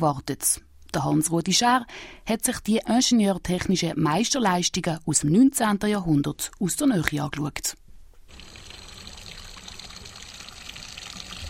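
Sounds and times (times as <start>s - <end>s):
speech: 0.0s - 8.4s
water running from a fountain in front of Schloss Angenstein: 8.3s - 11.4s.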